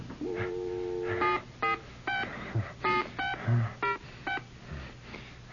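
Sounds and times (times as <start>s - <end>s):
telephone held dial tone: 0.2s - 4.0s
telephone keypad beeps: 0.4s - 4.5s.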